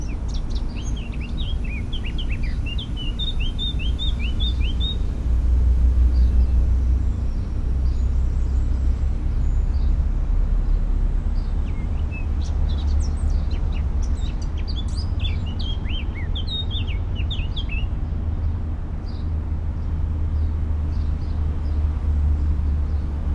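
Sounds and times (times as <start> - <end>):
Eurasian blackcap Sylvia atricapilla singing: 0.0 - 23.3
deep rumbling background noise: 0.0 - 23.3.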